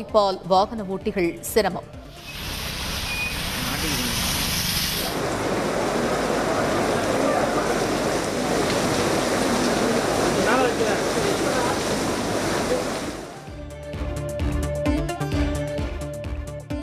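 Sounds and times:
speech: 0.0s - 2.4s
music: 0.0s - 3.8s, 13.3s - 16.8s
heavy rain flooding roads in Chennai, India: 2.1s - 13.5s.

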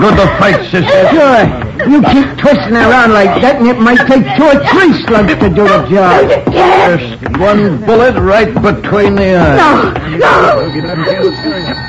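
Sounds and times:
laughter: 0.0s - 6.6s, 9.7s - 11.8s
speech: 0.0s - 11.8s
telephone ringing with a buzzing bell-like tone: 10.4s - 11.8s.

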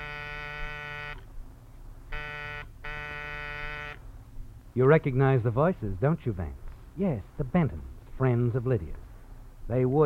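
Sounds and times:
harsh electric front-door buzzer: 0.0s - 1.3s, 2.1s - 4.0s
speech: 4.8s - 9.0s, 9.7s - 10.0s.

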